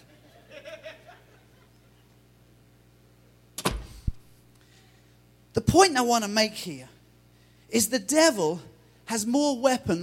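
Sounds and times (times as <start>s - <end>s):
laughter: 0.0s - 2.2s
door thudding shut: 3.6s - 4.2s
speech: 5.6s - 6.9s, 7.7s - 10.0s.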